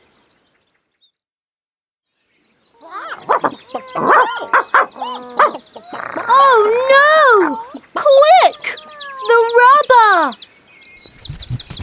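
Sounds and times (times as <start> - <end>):
dog barking: 2.9 - 6.4
speech: 4.0 - 10.5
quick chirps: 11.0 - 11.8.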